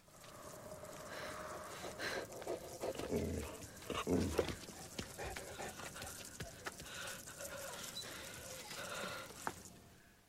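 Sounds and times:
dog panting: 1.7 - 9.5.

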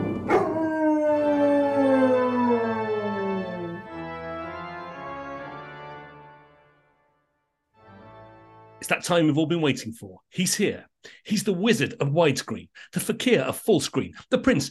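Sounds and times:
dog howling: 0.3 - 2.9
speech: 9.0 - 14.6.

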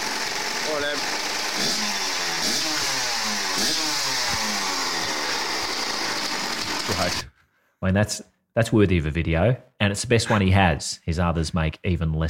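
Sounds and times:
Kawasaki motorcycle engine revving in a backyard: 0.0 - 7.2
speech: 7.0 - 12.2.

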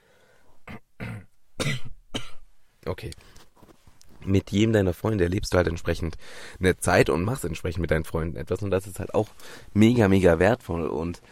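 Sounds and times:
person clearing throat: 0.6 - 2.4
speech: 2.9 - 3.4, 4.2 - 11.3.

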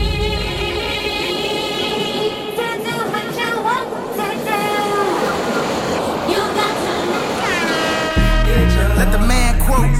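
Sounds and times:
train rumbling past: 0.0 - 9.4
train horn sounding in long steady blasts: 7.4 - 9.8.

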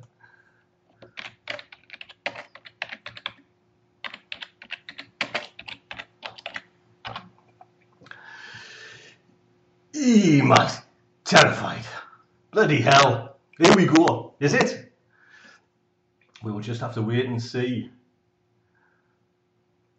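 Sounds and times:
typing on a computer keyboard: 1.0 - 7.4
speech: 10.1 - 11.9, 12.6 - 14.9, 16.5 - 18.0.

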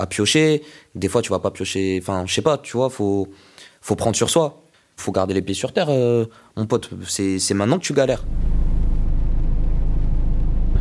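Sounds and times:
speech: 0.0 - 8.7
car interior rumble while parked: 8.2 - 10.7.

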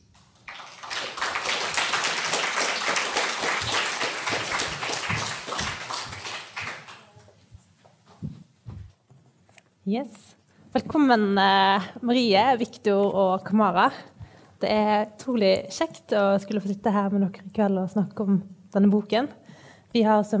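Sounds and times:
audience applause at an evening book discussion event: 0.2 - 7.3
speech: 9.9 - 20.3.

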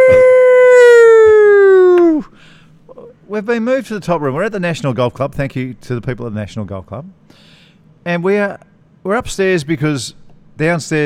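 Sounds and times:
protest siren wailing outdoors: 0.0 - 2.2
speech: 3.3 - 11.0.

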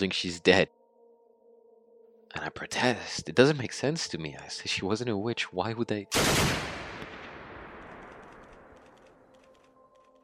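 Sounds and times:
speech: 0.0 - 0.8, 2.3 - 6.8
soldiers' rifle gunfire: 6.1 - 9.1.

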